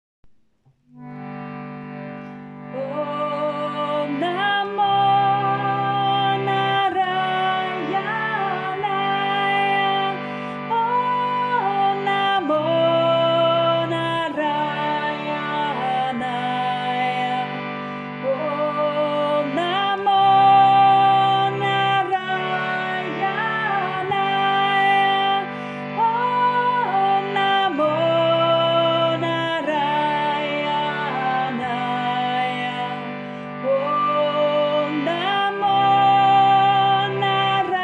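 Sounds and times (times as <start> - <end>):
person chanting first voice part: 2.7 - 37.8.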